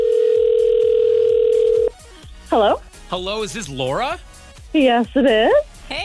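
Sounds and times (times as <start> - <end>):
telephone dial tone while placing a call: 0.0 - 1.9
speech: 2.6 - 5.6.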